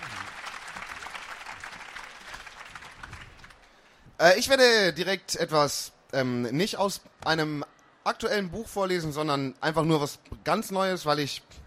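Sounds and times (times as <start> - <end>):
audience applause for a performer at a reading event: 0.0 - 3.7
speech: 4.2 - 11.6.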